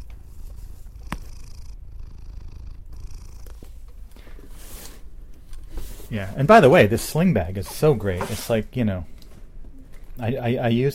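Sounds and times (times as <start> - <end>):
cat purring on a box on top of a closet: 0.0 - 8.2
speech: 6.1 - 9.1, 10.2 - 10.9.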